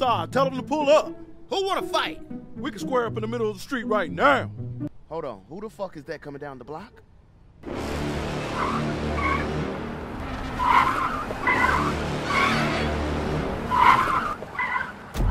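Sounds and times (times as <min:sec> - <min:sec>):
speech: 0:00.0 - 0:09.3
car engine rumble: 0:07.6 - 0:15.2
car tires squealing as a car skids: 0:07.7 - 0:15.2.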